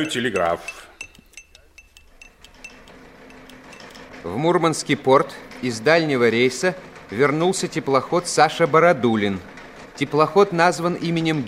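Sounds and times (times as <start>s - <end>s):
speech: 0.0s - 0.9s, 4.2s - 11.4s
spoon clinking against a glass of tea: 0.0s - 2.9s.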